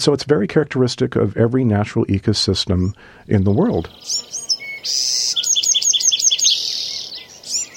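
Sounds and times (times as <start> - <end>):
speech: 0.0 - 5.3
birds singing in a forest with rapid trilling chirps: 2.8 - 7.7
steady high buzzing of insects: 3.4 - 7.7.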